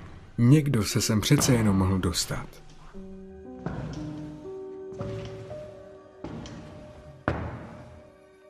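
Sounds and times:
speech: 0:00.4 - 0:02.7
slow heavy footsteps thudding across a floor in a house: 0:01.2 - 0:02.0, 0:03.0 - 0:08.4.

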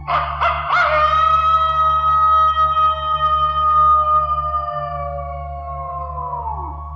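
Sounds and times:
low constant hum: 0:00.0 - 0:06.9
wolf howling: 0:00.0 - 0:06.9.

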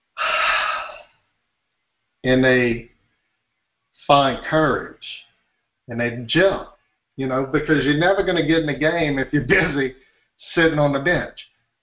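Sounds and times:
person taking a deep sharp breath in: 0:00.2 - 0:01.0
speech: 0:02.2 - 0:02.9, 0:04.0 - 0:05.3, 0:05.9 - 0:11.8.

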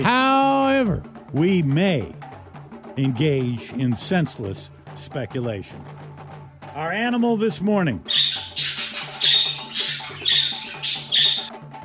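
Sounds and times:
speech: 0:00.8 - 0:02.3, 0:03.0 - 0:06.0, 0:06.8 - 0:08.2
bright raspy bird chirps: 0:08.0 - 0:11.5.

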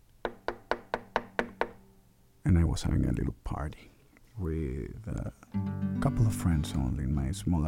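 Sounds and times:
knocking on a door: 0:00.3 - 0:01.8
speech: 0:02.5 - 0:07.6.

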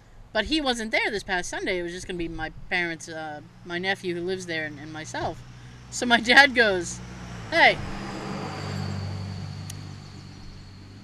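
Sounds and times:
speech: 0:00.4 - 0:08.0
big truck driving past outside: 0:03.4 - 0:11.0.

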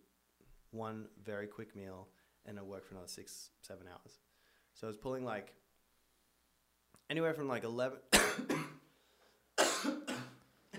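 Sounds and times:
speech: 0:00.7 - 0:05.6, 0:07.0 - 0:08.7
person coughing harshly: 0:08.1 - 0:08.8, 0:09.6 - 0:10.7.

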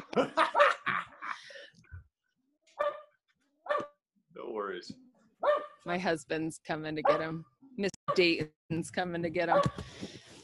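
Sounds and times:
laughter: 0:00.0 - 0:01.6
speech: 0:00.2 - 0:00.5, 0:04.8 - 0:05.0, 0:05.9 - 0:10.1
dog barking at squirrels: 0:00.5 - 0:00.8, 0:02.8 - 0:04.0, 0:05.4 - 0:05.8, 0:07.0 - 0:07.4, 0:09.5 - 0:09.8.

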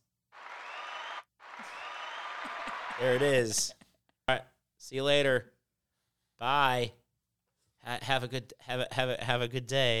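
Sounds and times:
dense wash of clapping: 0:00.0 - 0:03.7
speech: 0:03.0 - 0:05.5, 0:06.4 - 0:07.0, 0:07.8 - 0:09.9.

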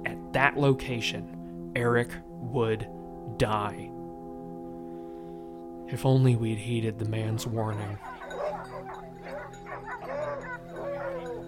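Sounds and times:
speech: 0:00.4 - 0:03.9, 0:05.9 - 0:08.2
hounds barking and yipping: 0:07.7 - 0:11.4.

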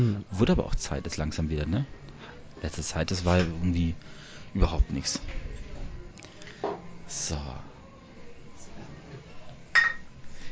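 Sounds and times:
speech: 0:00.0 - 0:05.6, 0:06.6 - 0:07.7
faint murmuring voices: 0:00.0 - 0:10.4
glasses clinking in a toast outdoors in the sun: 0:09.7 - 0:10.1.

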